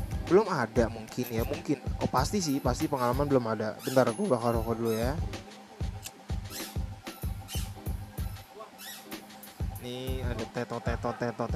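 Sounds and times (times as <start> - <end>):
speech: 0.3 - 5.6, 9.8 - 11.5
child's squeaky sandals squeaking while walking: 3.0 - 5.2, 6.5 - 9.2.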